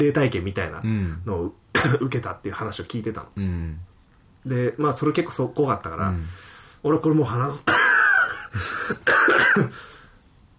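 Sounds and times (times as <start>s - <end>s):
speech: 0.0s - 7.9s, 8.5s - 10.0s
person coughing and clearing throat after choking: 1.8s - 2.1s, 7.7s - 9.9s.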